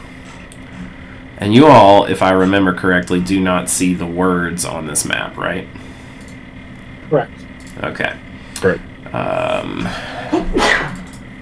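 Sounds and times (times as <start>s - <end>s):
speech: 1.4s - 5.9s, 7.1s - 10.8s
sneeze: 10.4s - 11.0s.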